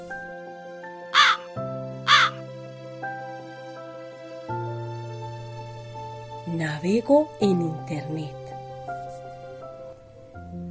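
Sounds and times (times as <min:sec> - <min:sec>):
crow cawing: 0:01.1 - 0:02.4
speech: 0:06.6 - 0:08.4.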